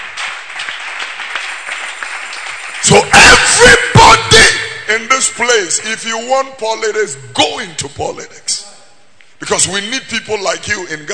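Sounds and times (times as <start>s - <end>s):
audience clapping hands at a political gathering: 0.0s - 3.8s
speech: 2.8s - 3.9s, 4.9s - 8.8s, 9.4s - 11.1s.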